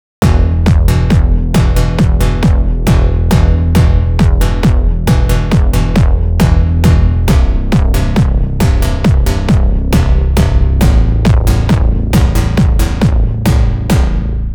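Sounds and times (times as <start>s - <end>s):
programmed bass line: 0.2s - 14.5s.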